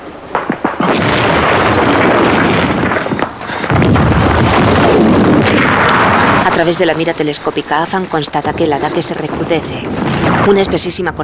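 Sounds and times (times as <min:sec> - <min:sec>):
hand grenade explosions during a wartime trench assault: 0:00.3 - 0:11.1
speech: 0:06.6 - 0:11.2.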